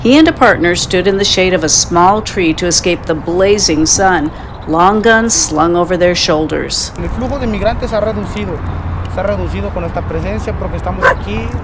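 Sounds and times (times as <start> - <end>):
speech: 0.0 - 11.6
dog barking and yipping: 11.0 - 11.3.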